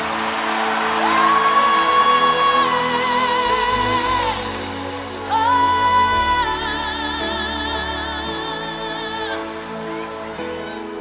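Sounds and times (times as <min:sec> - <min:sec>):
large crowd shouting a name and cheering: 0:00.0 - 0:10.9.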